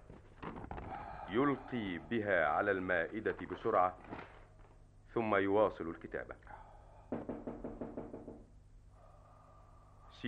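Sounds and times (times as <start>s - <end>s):
faint hiss: 0.0s - 10.2s
speech: 1.3s - 4.2s, 5.2s - 6.7s
knocking on a wooden door: 7.1s - 8.5s.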